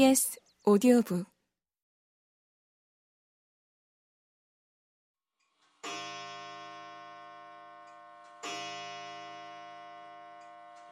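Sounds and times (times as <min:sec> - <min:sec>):
speech: 0:00.0 - 0:01.3
old clock in a living room chiming: 0:05.6 - 0:10.8.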